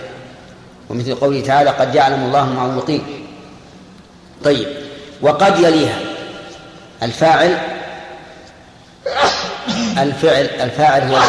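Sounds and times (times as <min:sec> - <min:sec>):
room noise: 0:00.0 - 0:11.2
speech: 0:00.9 - 0:03.3, 0:04.4 - 0:06.0, 0:07.0 - 0:07.7, 0:10.0 - 0:11.2
person sneezing: 0:09.0 - 0:10.0.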